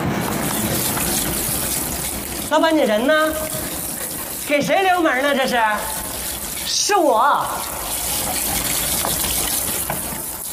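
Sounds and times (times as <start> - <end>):
water running while someone takes a bath: 0.1 - 10.5
speech: 2.5 - 3.5, 4.5 - 5.9, 6.7 - 8.0.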